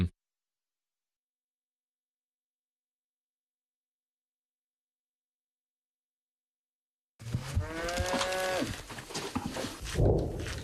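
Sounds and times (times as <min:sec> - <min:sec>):
cow mooing in a long harmonic bellow: 0:07.2 - 0:08.8
outdoor rustling: 0:07.2 - 0:10.6.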